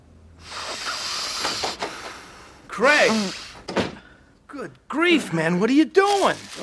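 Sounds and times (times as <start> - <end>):
person sniffing chemical fumes hard: 0.4 - 2.1, 3.0 - 3.7
speech: 2.8 - 3.4, 4.6 - 6.6.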